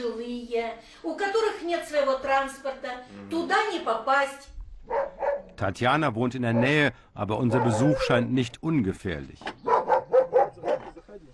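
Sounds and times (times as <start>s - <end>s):
speech: 0.0s - 9.7s
guard dog barking: 4.8s - 5.6s, 6.5s - 6.8s, 7.4s - 8.3s, 9.6s - 11.0s.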